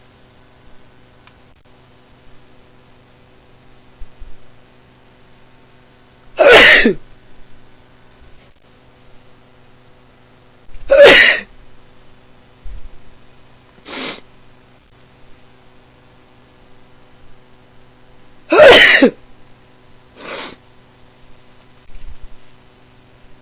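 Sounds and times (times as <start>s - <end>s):
person with a dog allergy sneezing after playing with a dog: 6.4s - 7.0s, 10.8s - 11.5s, 13.8s - 14.2s, 18.5s - 19.2s, 20.2s - 20.6s.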